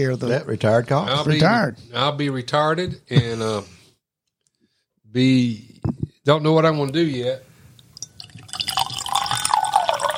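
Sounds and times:
speech: 0:00.0 - 0:03.8, 0:05.1 - 0:07.5
liquid being poured into a glass: 0:07.9 - 0:10.1.

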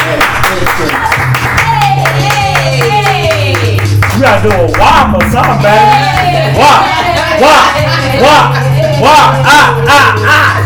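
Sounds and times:
audience applause: 0:00.0 - 0:07.6
speech: 0:00.6 - 0:01.3, 0:04.2 - 0:10.6
laughter: 0:05.9 - 0:10.6.

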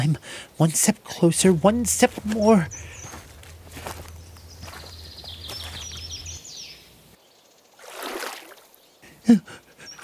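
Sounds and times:
speech: 0:00.0 - 0:03.0, 0:09.3 - 0:09.6
birds chirping: 0:00.0 - 0:07.8, 0:08.7 - 0:10.0
person wading through a cold river: 0:01.3 - 0:06.4, 0:07.8 - 0:08.8.

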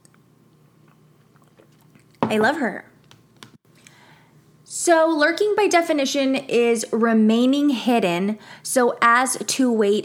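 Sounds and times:
faint steady hum: 0:00.0 - 0:10.0
sipping wine with wet mouth clicks and slurps: 0:00.8 - 0:02.2
speech: 0:02.3 - 0:02.9, 0:04.8 - 0:10.0.

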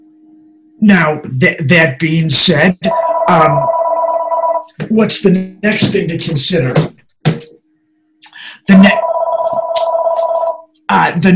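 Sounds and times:
speech: 0:00.8 - 0:03.8, 0:04.8 - 0:06.9, 0:11.1 - 0:11.3
telephone bell ringing: 0:02.8 - 0:04.8, 0:08.7 - 0:10.7.

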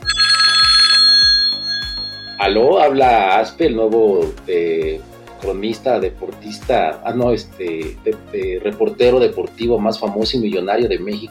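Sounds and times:
telephone ringing with an incoming call: 0:00.0 - 0:03.3
speech: 0:02.5 - 0:11.2.

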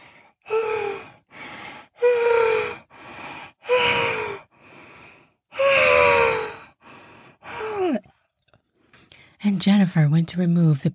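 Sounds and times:
person gasping for breath: 0:00.0 - 0:08.1
speech: 0:09.5 - 0:10.9.

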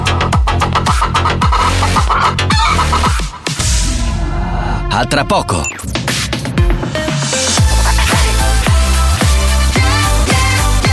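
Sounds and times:
pounding rhythmic beat: 0:00.0 - 0:04.2, 0:05.2 - 0:10.9
loud busy chicken clucking and squawking: 0:00.5 - 0:03.4
speech: 0:05.0 - 0:06.2.

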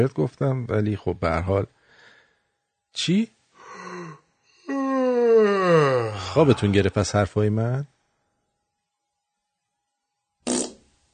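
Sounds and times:
speech: 0:00.0 - 0:01.8, 0:02.9 - 0:03.4, 0:05.7 - 0:07.9
loud fart: 0:10.4 - 0:11.0.

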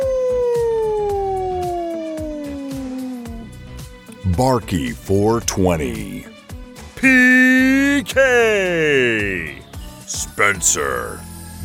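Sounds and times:
wolf-like howl: 0:00.0 - 0:03.5
faint rhythmic ticking beat: 0:02.2 - 0:06.3
speech: 0:04.4 - 0:06.3, 0:07.0 - 0:07.4, 0:08.0 - 0:11.3.

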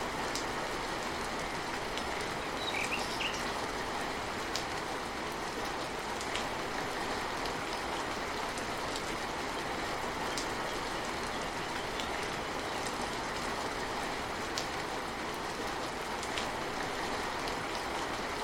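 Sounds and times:
steady dense tropical rain in a lush jungle: 0:00.0 - 0:18.4
faint bird chirps: 0:02.4 - 0:03.5.

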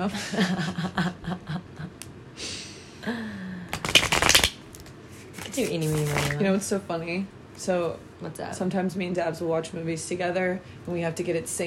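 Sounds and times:
speech: 0:00.0 - 0:01.7, 0:05.6 - 0:11.6
laughter: 0:00.0 - 0:01.9
deck of cards being riffle-shuffled: 0:03.7 - 0:06.4.

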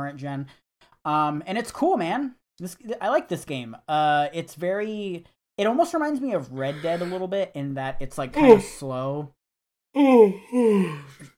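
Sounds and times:
speech: 0:00.0 - 0:09.4, 0:10.0 - 0:11.3
voiced yawn: 0:06.6 - 0:07.2, 0:10.0 - 0:11.3.

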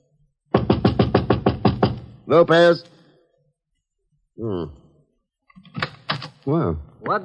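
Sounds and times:
rapid insistent knocking on an apartment door: 0:00.5 - 0:02.2
speech: 0:02.3 - 0:02.9, 0:04.4 - 0:04.8, 0:06.4 - 0:07.2.

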